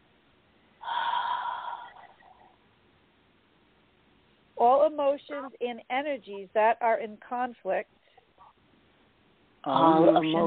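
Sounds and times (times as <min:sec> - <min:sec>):
soft inhalation during a guided meditation: 0:00.8 - 0:02.5
speech: 0:04.6 - 0:08.0, 0:09.6 - 0:10.4.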